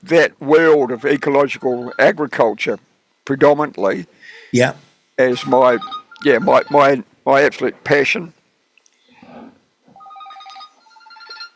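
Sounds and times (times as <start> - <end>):
speech: 0.0 - 8.4
telephone ringing with a bright electronic warble: 0.9 - 2.2, 5.3 - 7.0, 10.0 - 11.5.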